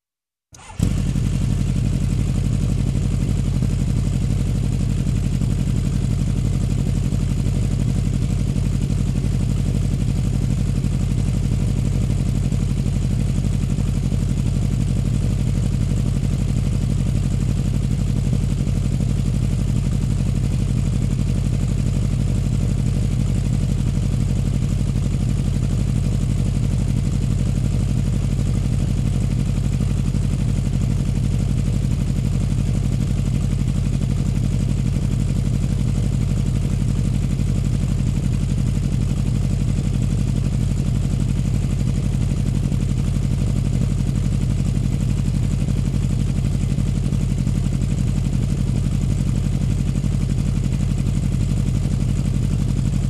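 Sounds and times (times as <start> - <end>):
motorbike engine running idle: 0.6 - 53.0.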